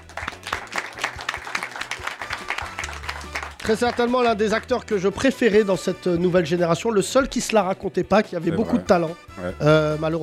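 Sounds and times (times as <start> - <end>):
audience applause as a tribute to a late French actor: 0.0 - 4.3
speech: 3.7 - 10.2.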